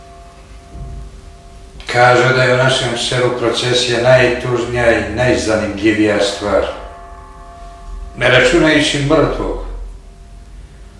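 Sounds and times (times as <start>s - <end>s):
church bells ringing: 0.0s - 10.9s
low rumble: 0.0s - 10.9s
speech: 1.9s - 6.8s, 8.2s - 9.6s.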